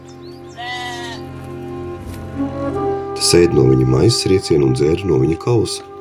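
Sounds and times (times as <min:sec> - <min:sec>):
lamb bleating: 0:00.5 - 0:01.3
speech: 0:03.2 - 0:05.9.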